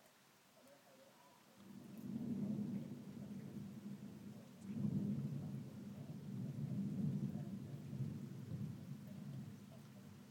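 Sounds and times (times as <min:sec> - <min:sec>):
steady hiss of rain: 0:00.0 - 0:10.2
distant thunder rumbling during a storm: 0:01.6 - 0:10.2.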